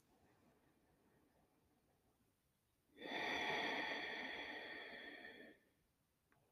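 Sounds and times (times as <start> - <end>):
deep breathing through the nose: 3.0 - 5.7.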